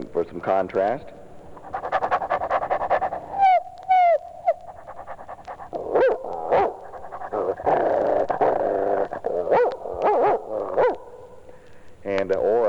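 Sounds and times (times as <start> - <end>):
speech: 0.3 - 1.8
German shepherd dog panting: 1.5 - 3.6, 4.4 - 11.0
German shepherd dog growling and barking: 1.6 - 11.4.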